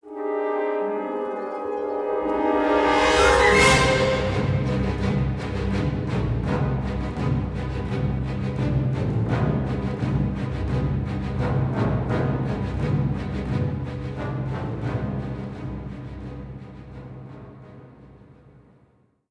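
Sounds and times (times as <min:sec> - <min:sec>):
intro music flourish: 0:00.0 - 0:17.3.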